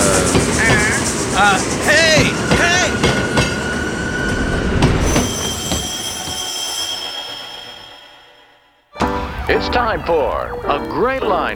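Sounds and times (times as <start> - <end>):
train rolling on rails with clickety-clack: 0.0 - 8.9
speech: 1.4 - 1.7, 9.5 - 11.5
high metallic train wheel squeal: 2.2 - 9.0.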